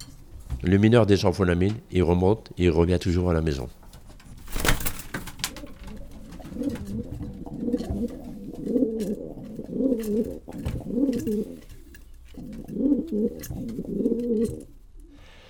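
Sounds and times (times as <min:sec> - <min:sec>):
speech: 0:00.6 - 0:03.8
pigeons cooing: 0:04.0 - 0:15.1.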